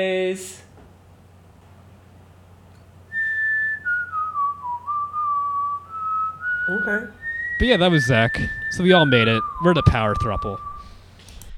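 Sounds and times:
speech: 0.0s - 0.6s, 6.9s - 10.7s
low steady hum: 0.0s - 11.5s
person whistling a slow wandering tune: 3.1s - 11.0s.

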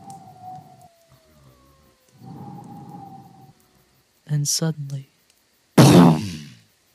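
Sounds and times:
speech: 4.3s - 5.1s
loud sneeze: 5.8s - 6.6s.

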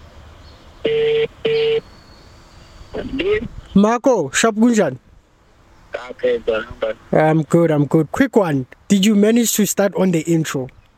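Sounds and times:
phone ringback tone over a speakerphone: 0.9s - 1.8s
person speaking on phone after picking up: 3.0s - 3.9s, 5.9s - 10.7s
speech: 3.2s - 5.1s, 6.1s - 10.8s.

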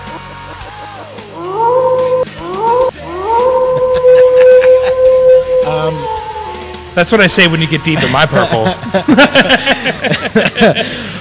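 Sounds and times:
dog howling: 1.3s - 7.2s
laughter: 3.6s - 5.5s, 7.8s - 11.1s
speech: 7.0s - 11.1s.

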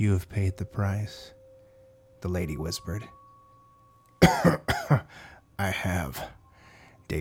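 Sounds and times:
speech: 0.0s - 1.4s, 2.2s - 3.2s, 4.2s - 6.4s
harsh coughs: 4.2s - 5.1s.

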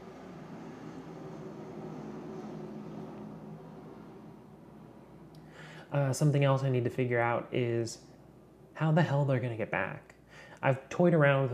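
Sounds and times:
airplane engine drone passing overhead: 0.0s - 8.8s
speech: 5.9s - 8.1s, 8.8s - 11.5s.

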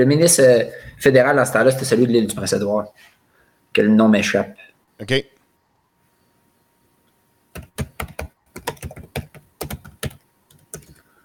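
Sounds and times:
speech: 0.0s - 3.1s, 3.7s - 5.3s
typing on a computer keyboard: 7.6s - 11.1s.

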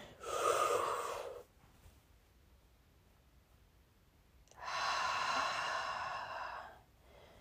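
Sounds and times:
deep breath: 0.0s - 1.5s, 4.5s - 7.3s.

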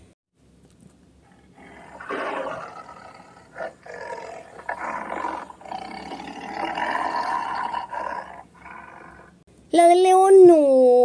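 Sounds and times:
lion roaring: 1.2s - 9.4s
people talking: 9.7s - 11.0s.

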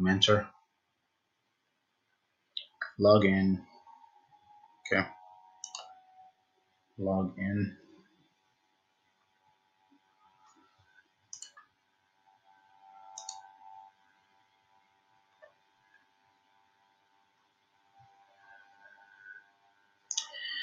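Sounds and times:
speech: 0.0s - 0.6s, 3.0s - 3.7s, 4.9s - 5.2s, 7.0s - 7.8s
steady low hum: 0.0s - 20.6s
faint computer mouse clicks while building a website: 5.6s - 6.0s, 11.3s - 11.7s, 13.1s - 13.4s.

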